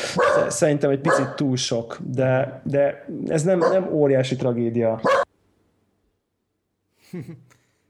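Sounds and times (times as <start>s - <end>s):
dog barking: 0.0s - 1.4s, 3.6s - 3.9s, 5.0s - 5.3s
speech: 0.2s - 5.2s, 7.1s - 7.6s.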